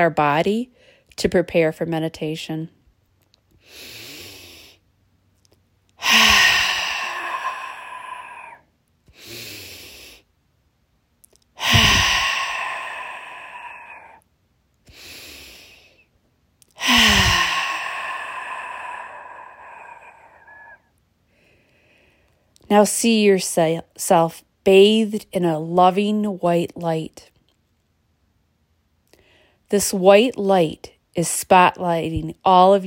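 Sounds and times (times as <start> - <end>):
speech: 0.0 - 2.8, 22.7 - 27.3, 29.7 - 32.8
deep breaths with loud exhales during a guided meditation: 3.6 - 4.9, 6.0 - 10.3, 11.6 - 14.2, 14.9 - 16.1, 16.8 - 22.4.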